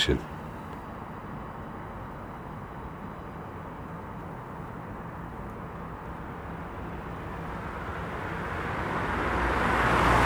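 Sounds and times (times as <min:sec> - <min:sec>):
speech: 0:00.0 - 0:00.3
car passing along a road by a canal: 0:07.0 - 0:10.2.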